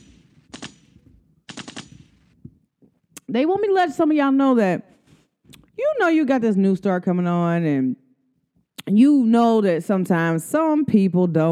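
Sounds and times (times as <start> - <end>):
gunshot bursts like automatic fire: 0.0 - 2.3
speech: 3.3 - 4.9, 6.0 - 8.0, 8.9 - 11.5.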